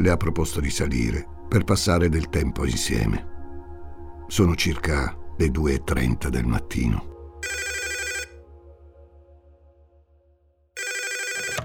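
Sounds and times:
speech: 0.0 - 3.3, 4.3 - 7.7
telephone ringing in bright electronic bursts: 7.4 - 8.3, 10.8 - 11.6.

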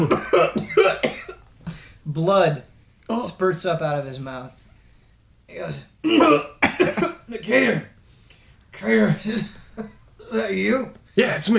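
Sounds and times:
person acting out a fit of coughing: 0.0 - 1.9, 6.0 - 7.8
speech: 2.2 - 4.6, 5.5 - 7.9, 8.8 - 11.5.

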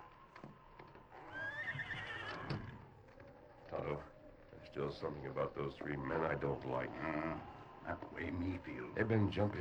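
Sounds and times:
horse whinnying in a barn: 1.1 - 2.8
speech: 4.8 - 9.5.

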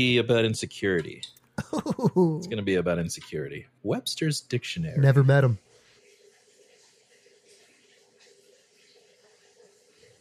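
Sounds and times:
speech: 0.0 - 5.7
laughter: 1.6 - 2.5
shower water running: 4.1 - 10.1.

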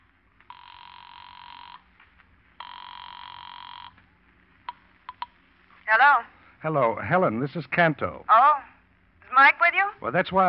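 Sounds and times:
buzzy telephone rings over the line from an airport phone booth: 0.5 - 2.0, 2.6 - 4.0
speech: 5.9 - 8.5, 9.4 - 10.4.

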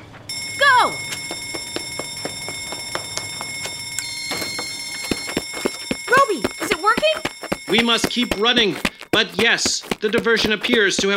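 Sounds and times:
smoke alarm going off with shrill high-pitched electronic tone: 0.3 - 8.8
speech: 7.7 - 11.1.

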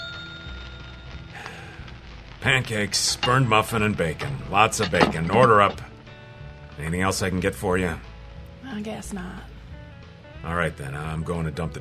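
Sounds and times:
small bell ringing: 0.0 - 0.9
speech: 2.4 - 5.9, 6.8 - 9.5, 10.4 - 11.7
rumbling kitchen-like clatter: 3.1 - 5.9.

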